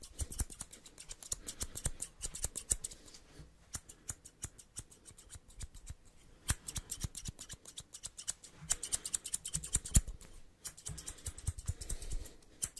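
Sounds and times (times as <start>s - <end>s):
barbershop scissors snipping: 0.0s - 12.7s.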